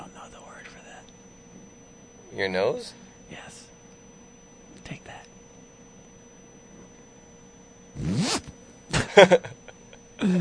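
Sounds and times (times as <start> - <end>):
speech: 2.3 - 3.7, 9.2 - 9.6, 10.2 - 10.3
zipper being pulled: 8.0 - 8.6.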